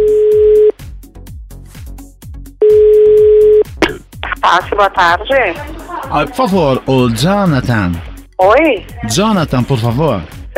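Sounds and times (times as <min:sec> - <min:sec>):
telephone ringback tone while calling a landline: 0:00.0 - 0:00.7, 0:02.6 - 0:03.6
speech: 0:04.5 - 0:10.5.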